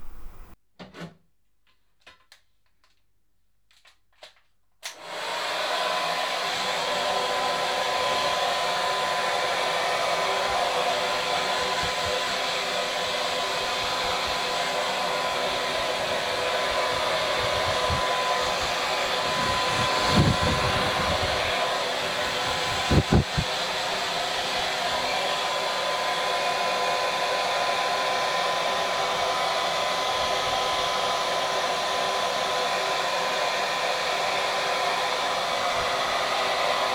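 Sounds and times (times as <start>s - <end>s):
hair dryer blowing on hair: 0.0s - 0.6s, 4.9s - 36.9s
soft knocks and shuffles: 0.0s - 0.6s.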